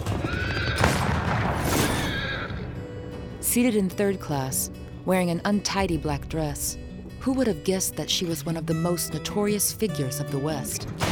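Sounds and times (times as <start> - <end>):
horse neighing: 0.0 - 1.0, 1.7 - 2.8
speech: 3.6 - 11.1.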